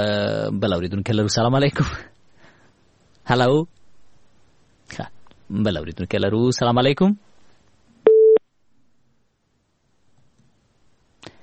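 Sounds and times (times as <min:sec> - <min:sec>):
speech: 0:00.0 - 0:02.1, 0:03.3 - 0:03.8, 0:04.9 - 0:07.3
phone line tone after a call is cut off: 0:08.1 - 0:08.4.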